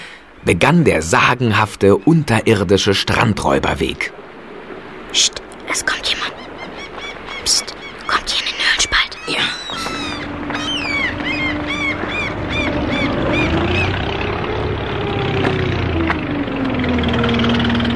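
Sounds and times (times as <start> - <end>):
bright chirping bird calls: 0.0 - 17.9
speech: 0.4 - 4.2, 5.1 - 6.4, 7.4 - 7.8
broad rushing background: 4.0 - 17.9
approaching boat engine drone: 6.0 - 17.9.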